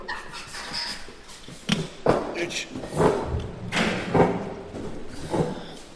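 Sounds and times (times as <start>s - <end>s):
broken wooden chair thumping and knocking as it is lifted and moved: 2.0s - 5.6s.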